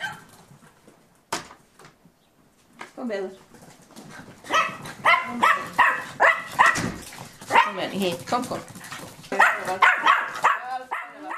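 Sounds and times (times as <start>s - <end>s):
German spitz dogs, mother and puppies, barking and yipping: 0.0s - 0.8s, 4.0s - 11.3s
speech: 3.0s - 3.6s, 5.3s - 5.8s, 7.7s - 8.8s, 9.7s - 10.1s.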